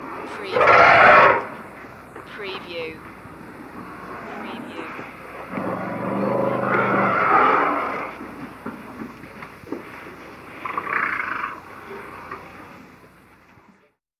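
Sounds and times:
elephants at a watering hole: 3.5 - 13.2.

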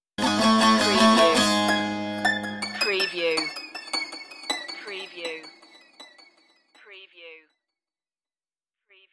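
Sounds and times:
eastern pulses stinger: 0.5 - 6.7.

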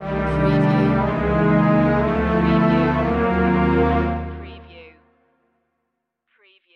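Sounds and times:
orchestra music: 0.0 - 4.8.

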